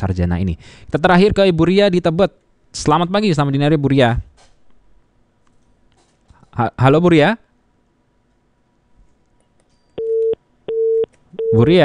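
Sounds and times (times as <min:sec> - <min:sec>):
speech: 0:00.0 - 0:04.3, 0:06.6 - 0:07.5, 0:11.5 - 0:11.8
telephone disconnected tone on a dropped call-in line: 0:10.0 - 0:11.6.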